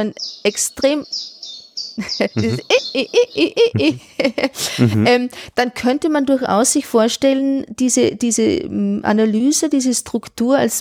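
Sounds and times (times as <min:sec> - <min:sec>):
speech: 0:00.0 - 0:01.4, 0:02.0 - 0:10.7
high thin birdsong chirps: 0:00.0 - 0:03.8
laughter: 0:02.0 - 0:05.2.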